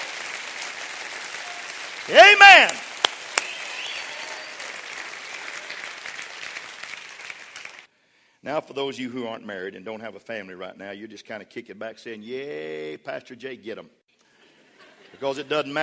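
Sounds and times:
congregation clapping: 0.0s - 7.9s
person calling out: 2.1s - 2.8s
speech: 2.1s - 2.8s, 8.4s - 14.0s, 15.2s - 15.8s.

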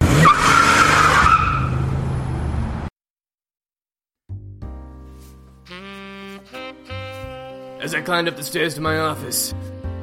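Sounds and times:
car engine roaring: 0.0s - 2.9s
car tires screeching: 0.0s - 2.9s
speech: 7.9s - 9.9s.

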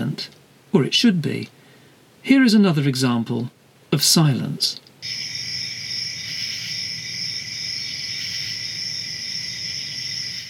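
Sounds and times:
speech: 0.2s - 1.6s, 2.2s - 5.2s
cicadas droning and pulsing in the night air: 5.0s - 10.4s.

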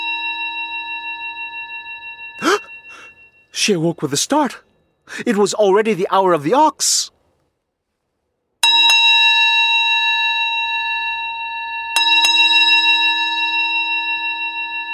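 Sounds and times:
bell ringing with a bright shimmering tone: 0.0s - 5.0s, 8.6s - 14.9s
speech: 3.6s - 7.2s.

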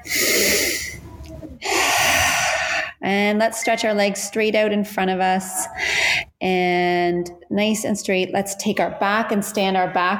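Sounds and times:
deep breath taken during a yoga stretch: 0.0s - 3.0s, 5.8s - 6.3s
speech: 3.1s - 10.1s.

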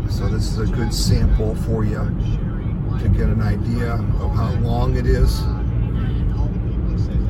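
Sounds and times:
car driving along a road past trucks: 0.0s - 7.2s
speech: 0.2s - 2.4s, 3.0s - 5.6s.

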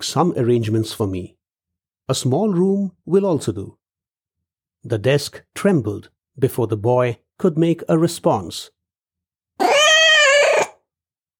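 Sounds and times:
speech: 0.0s - 1.4s, 2.1s - 3.8s, 4.8s - 8.8s
grey cat meowing: 9.6s - 10.8s.

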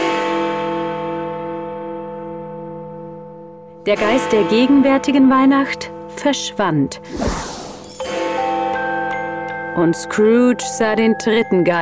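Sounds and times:
deep church bell striking twelve o'clock: 0.0s - 5.4s, 8.0s - 11.6s
speech: 3.9s - 8.1s, 9.8s - 11.8s.

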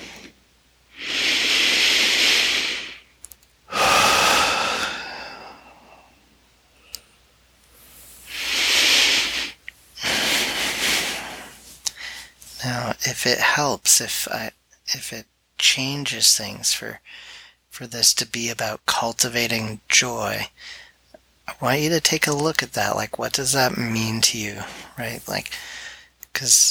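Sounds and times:
person breathing normally after breathing exercise: 0.0s - 3.1s, 3.7s - 12.6s, 17.0s - 17.7s, 20.6s - 21.0s, 24.6s - 26.2s
speech: 13.2s - 20.9s, 21.5s - 25.8s, 26.4s - 26.7s.

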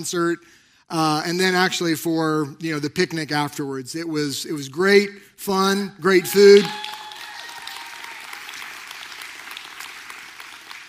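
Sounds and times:
speech: 0.0s - 6.9s
audience clapping: 6.3s - 10.8s.

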